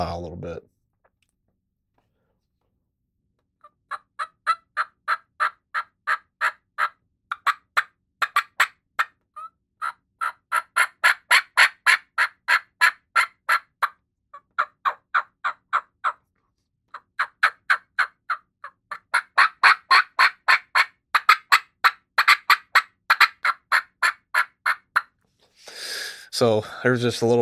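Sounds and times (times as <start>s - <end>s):
speech: 0.0s - 0.8s, 26.4s - 27.4s
person imitating turkey hen calls with clucks and cuts: 3.9s - 16.2s, 16.9s - 25.2s.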